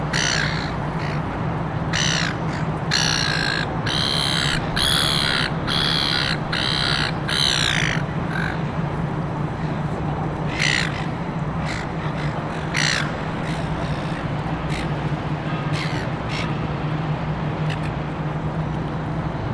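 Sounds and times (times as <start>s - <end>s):
city hum in Darling Harbour Sydney: 0.0s - 19.5s
seagull squawking in Darling Harbour Sydney: 0.1s - 1.2s, 1.9s - 8.6s, 10.5s - 14.9s.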